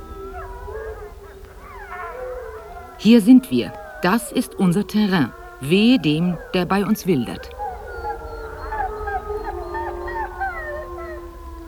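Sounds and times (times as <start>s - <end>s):
wolves howling to mark their territory: 0.0s - 11.6s
speech: 3.0s - 7.6s.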